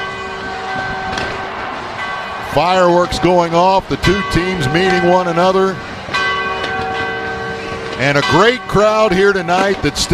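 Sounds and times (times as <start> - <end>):
noise: 0.0 - 10.1
victory bells ringing after a college football win: 0.0 - 10.1
speech: 2.6 - 5.9, 8.0 - 10.1.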